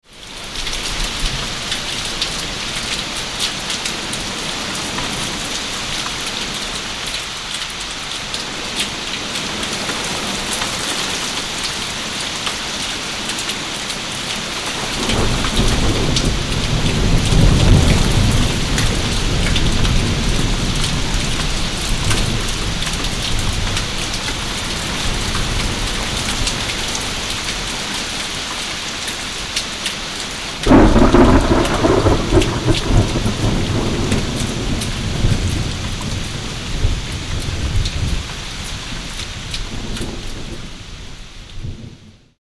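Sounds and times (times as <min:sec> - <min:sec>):
thunderstorm rain: 0:00.1 - 0:42.4.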